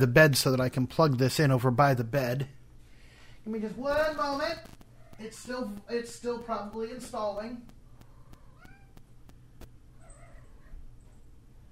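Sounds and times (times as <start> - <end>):
speech: 0.0 - 2.6, 3.4 - 7.8
sharp clicks: 6.4 - 9.8
cat meowing: 8.2 - 9.0, 10.0 - 10.8.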